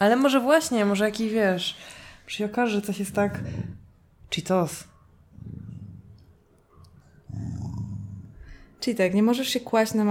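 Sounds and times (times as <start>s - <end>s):
speech: 0.0s - 5.6s, 8.8s - 10.0s
dog growling: 2.9s - 4.2s, 5.2s - 8.6s.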